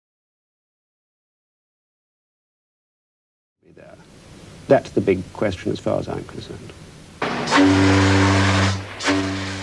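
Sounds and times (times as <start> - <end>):
speech: 3.6 - 6.8, 7.6 - 8.3
deep booming steam whistle of the ocean liner Lusitania: 7.2 - 9.6.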